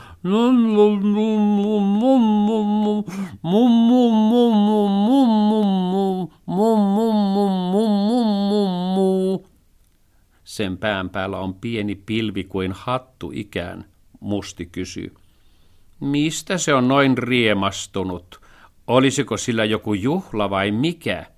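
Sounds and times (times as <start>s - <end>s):
speech: 0.2s - 4.4s, 10.6s - 15.2s, 16.0s - 21.3s
voice singing a tune in meows imitating a cat: 1.5s - 9.5s.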